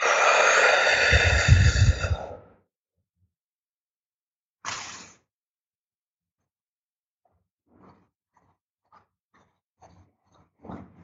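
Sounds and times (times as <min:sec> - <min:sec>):
forceful exhale during a breathing exercise: 0:00.0 - 0:02.5.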